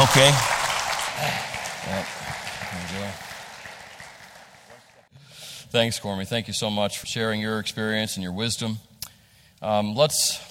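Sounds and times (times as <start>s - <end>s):
audience applause: 0.0s - 5.1s
speech: 0.2s - 0.5s, 1.2s - 3.2s, 5.7s - 8.9s, 9.6s - 10.4s.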